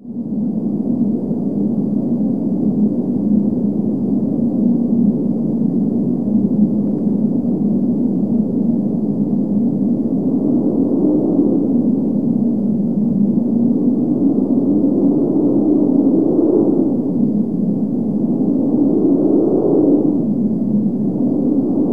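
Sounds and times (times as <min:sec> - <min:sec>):
space wind: 0:00.0 - 0:21.9.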